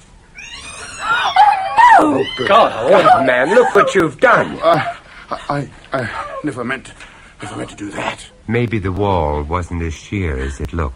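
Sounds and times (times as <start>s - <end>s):
startled cat yowling: 0.4s - 4.0s
laughter: 1.0s - 6.6s
speech: 2.0s - 10.9s.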